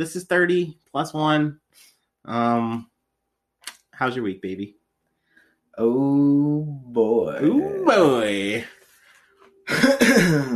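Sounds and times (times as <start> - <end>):
speech: 0.0 - 2.9, 4.0 - 4.8, 5.8 - 8.8, 9.7 - 10.5
loud cough: 9.7 - 10.5.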